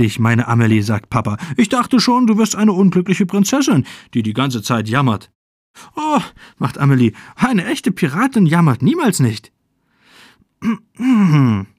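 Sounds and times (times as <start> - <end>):
speech: 0.0 - 9.6, 10.6 - 11.7
reader's voice imitating a throat clearing in a children's story: 10.6 - 11.7.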